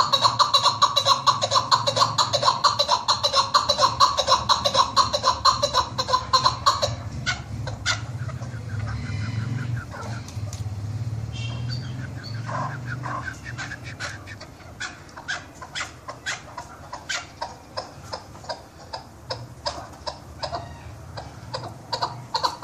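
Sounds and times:
partridge harsh calls: 0:00.0 - 0:10.6, 0:11.2 - 0:22.6.

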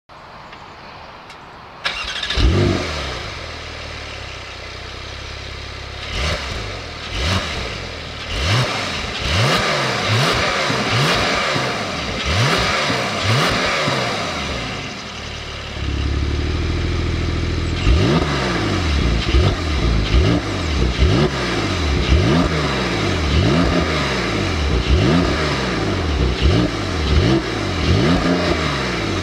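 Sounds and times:
Porsche 992 exhaust: 0:02.4 - 0:29.2.

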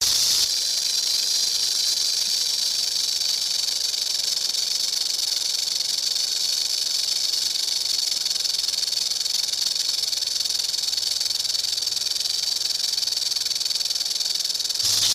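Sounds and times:
snake hissing: 0:00.0 - 0:15.1.

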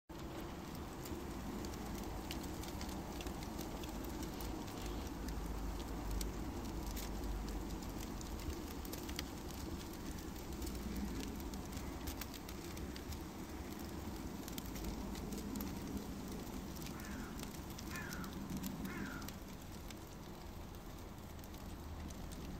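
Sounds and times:
wood fired oven: 0:00.1 - 0:22.5.

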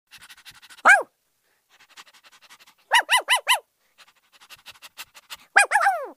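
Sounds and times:
cartoon dog barking: 0:00.8 - 0:01.1, 0:02.9 - 0:03.7, 0:05.4 - 0:06.1.

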